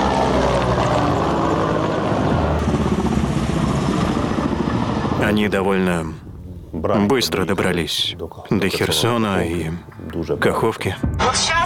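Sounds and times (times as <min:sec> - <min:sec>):
military aircraft engine roar overhead: 0:00.0 - 0:06.7
speech: 0:05.3 - 0:11.6.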